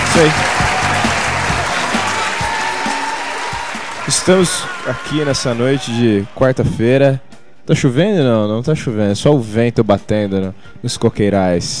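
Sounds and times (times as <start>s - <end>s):
audience clapping in a small auditorium: 0.0s - 6.2s
speech: 0.2s - 0.7s, 4.1s - 11.7s.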